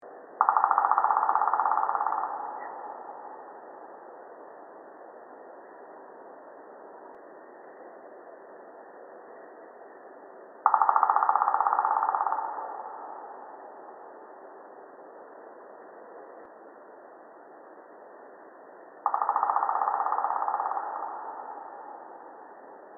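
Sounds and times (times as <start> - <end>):
black woodpecker drumming: 0.4 - 3.0, 10.6 - 13.3, 19.0 - 22.2.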